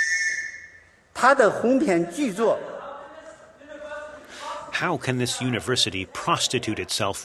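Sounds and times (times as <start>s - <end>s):
shrill whistle blast blown by protester in audience: 0.0s - 1.0s
speech: 1.2s - 2.7s, 4.8s - 7.2s
man's raised emphatic voice: 2.8s - 7.2s.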